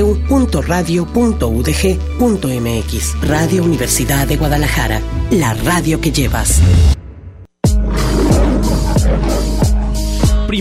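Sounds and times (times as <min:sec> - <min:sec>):
speech: 0:00.0 - 0:07.0
lion roaring: 0:07.7 - 0:10.2
lion deep grunting bursts: 0:07.7 - 0:10.5.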